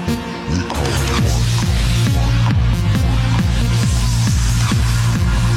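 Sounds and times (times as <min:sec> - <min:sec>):
bass boosted phone ringtone: 0:00.1 - 0:05.5.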